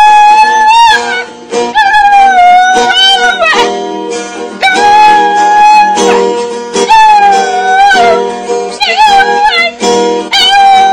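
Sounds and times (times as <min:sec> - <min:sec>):
dog howling along to a guitar: 0:00.0 - 0:03.7, 0:04.6 - 0:06.3, 0:06.9 - 0:10.9
guitar: 0:00.0 - 0:10.9.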